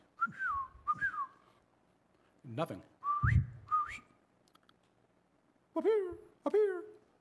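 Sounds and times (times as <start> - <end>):
person attempting to whistle: 0.2 - 1.4, 3.0 - 4.1
speech: 2.6 - 4.0, 5.8 - 6.9.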